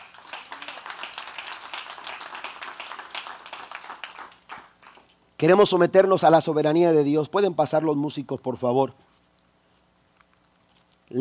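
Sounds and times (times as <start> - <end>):
crowd applauding: 0.0 - 5.1
speech: 5.4 - 9.1.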